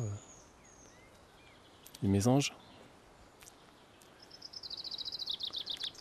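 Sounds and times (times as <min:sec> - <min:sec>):
chaffinch singing: 0:00.0 - 0:05.9
speech: 0:02.0 - 0:02.7.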